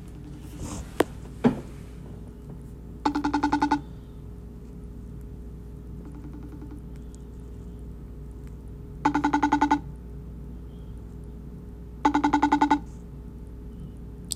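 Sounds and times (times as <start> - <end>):
quiet low hum: 0.0 - 14.3
old slow phone's outgoing ringback tone: 3.0 - 3.9, 6.0 - 6.8, 9.0 - 9.9, 12.0 - 12.9.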